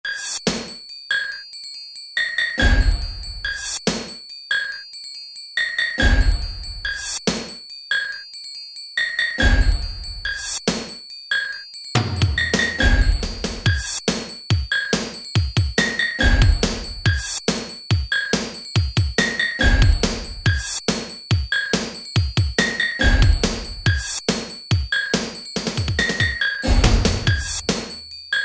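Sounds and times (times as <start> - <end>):
drum machine playing techno preset patterns: 0.0 - 1.5, 2.2 - 5.0, 5.6 - 8.3, 9.0 - 28.4.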